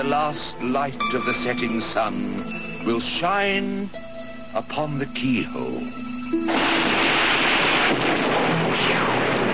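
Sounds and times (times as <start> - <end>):
speech: 0.0 - 7.0
thunderstorm roar: 6.5 - 9.5.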